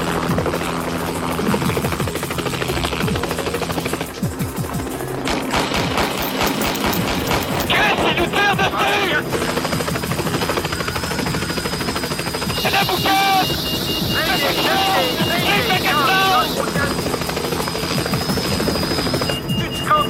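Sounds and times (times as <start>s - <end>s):
helicopter rotor chop and engine roar: 0.0s - 20.0s
rapid gunfire shot at a helicopter: 5.2s - 8.1s.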